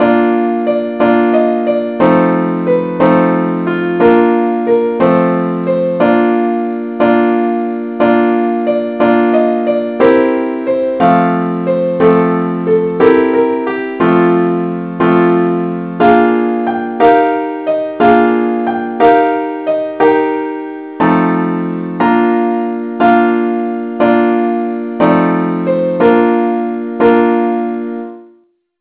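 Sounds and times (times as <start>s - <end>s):
simple accompaniment in B flat: 0.0s - 28.7s.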